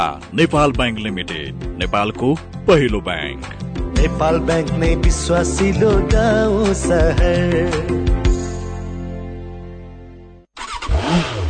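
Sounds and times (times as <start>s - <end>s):
speech: 0.0s - 8.0s
Bangladesh-made Runner motorcycle engine revving: 10.6s - 11.4s.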